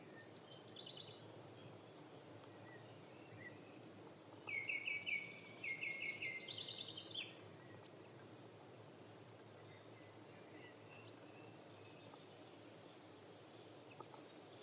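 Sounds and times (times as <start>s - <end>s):
steady background hiss: 0.0s - 14.6s
lesser spotted woodpecker Dendrocopos minor calling: 4.3s - 8.0s.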